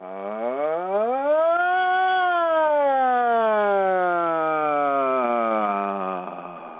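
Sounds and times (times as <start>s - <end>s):
human voice imitating a siren on an open ah vowel: 0.0s - 6.7s.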